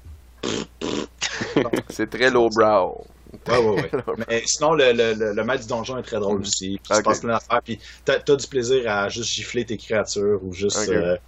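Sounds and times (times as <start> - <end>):
person blowing a raspberry to mimic a game creature farting: 0.4 - 1.9
laughter: 1.2 - 2.2, 3.4 - 4.5, 7.0 - 7.2
speech: 1.6 - 11.2.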